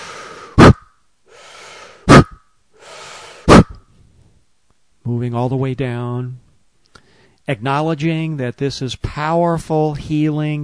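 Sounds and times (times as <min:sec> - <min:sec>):
soft airy breathing: 0:00.0 - 0:00.6, 0:01.2 - 0:04.4, 0:06.9 - 0:07.4
sharp forceful puffs of breath: 0:00.0 - 0:03.8
short quick breaths in a breathing exercise: 0:00.0 - 0:04.4, 0:06.9 - 0:07.4
speech: 0:05.1 - 0:06.4, 0:07.5 - 0:10.6.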